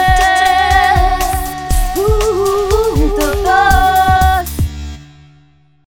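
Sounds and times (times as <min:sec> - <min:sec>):
sung radio jingle: 0:00.1 - 0:04.6.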